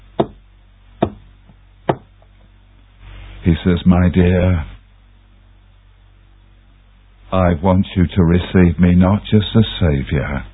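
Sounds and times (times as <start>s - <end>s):
firm knocks on a solid surface: 0.2s - 0.4s, 1.0s - 1.2s, 1.9s - 2.1s
speech: 3.4s - 4.7s, 7.3s - 10.5s.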